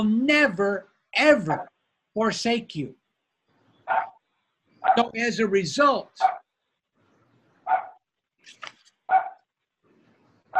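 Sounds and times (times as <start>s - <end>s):
speech: 0.0s - 3.0s, 4.8s - 6.4s
dog barking: 3.9s - 4.2s, 4.8s - 5.1s, 6.2s - 6.5s, 7.6s - 8.0s, 9.1s - 9.4s
dog yipping: 3.9s - 4.2s, 6.2s - 6.4s, 7.7s - 8.0s, 9.1s - 9.4s.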